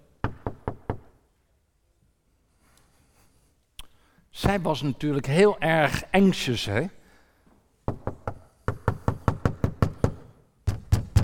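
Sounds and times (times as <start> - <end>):
speech: 4.4 - 7.0
knocking on a door: 7.9 - 11.2.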